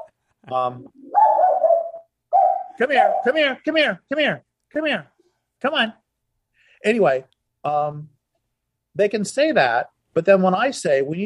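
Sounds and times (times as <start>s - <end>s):
speech: 0.5s - 1.2s, 2.8s - 6.0s, 6.8s - 8.1s, 9.0s - 11.2s
dog giving loud whiny yelping barks: 1.2s - 3.4s.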